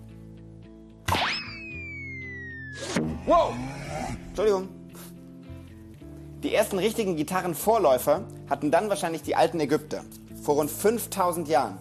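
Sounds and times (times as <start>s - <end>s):
taut bowstring twanging as an arrow is shot: 1.1s - 2.0s, 2.8s - 3.6s
speech: 3.2s - 4.8s, 6.4s - 11.7s.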